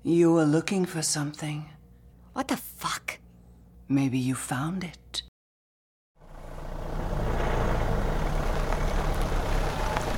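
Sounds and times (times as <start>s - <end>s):
speech: 0.0s - 1.8s, 2.4s - 3.2s, 3.9s - 5.3s
car engine rumbling: 6.2s - 10.1s
tires hissing over wet pavement: 6.2s - 10.1s.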